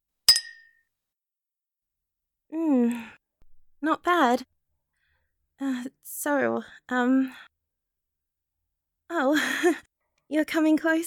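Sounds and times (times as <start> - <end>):
two glasses clinking in a toast: 0.3 - 0.7
speech: 2.5 - 3.2, 3.8 - 4.5, 5.6 - 7.5, 9.1 - 11.0.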